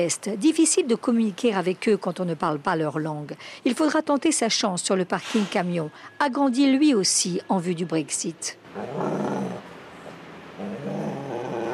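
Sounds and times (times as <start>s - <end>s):
speech: 0.0s - 9.7s, 10.6s - 11.2s
frightened dog growling in a small box: 8.7s - 11.7s.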